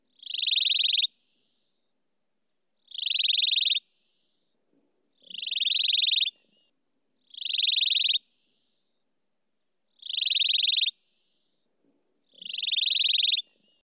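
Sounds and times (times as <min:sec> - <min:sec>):
grey-backed cisticola calling: 0:00.0 - 0:01.1, 0:02.8 - 0:03.9, 0:05.2 - 0:08.7, 0:10.0 - 0:11.0, 0:12.2 - 0:13.8.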